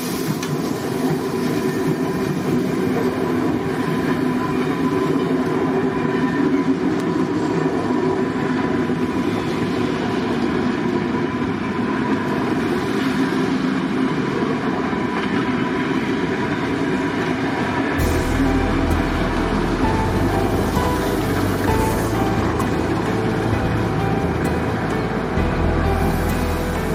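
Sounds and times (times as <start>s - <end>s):
steam locomotive rumbling: 0.0s - 26.9s
deep throbbing: 18.0s - 26.9s.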